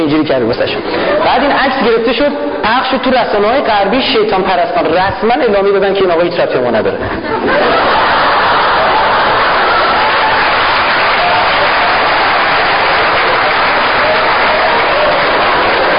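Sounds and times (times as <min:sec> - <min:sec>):
speech: 0:00.1 - 0:07.9
laughter: 0:00.7 - 0:01.7, 0:07.0 - 0:10.6, 0:13.0 - 0:15.9
audience clapping: 0:07.7 - 0:15.9.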